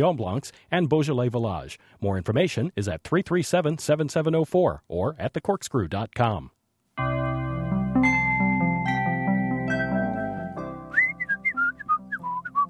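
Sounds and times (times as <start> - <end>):
speech: 0.0 - 7.1
instrumental music: 7.0 - 12.6
person whistling a tune: 10.9 - 12.6.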